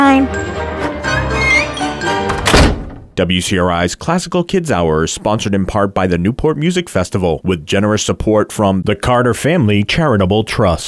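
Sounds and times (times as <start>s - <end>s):
speech: 0.1s - 0.5s, 3.2s - 10.8s
heavy concert hall doors closing with a thunk: 1.1s - 3.2s.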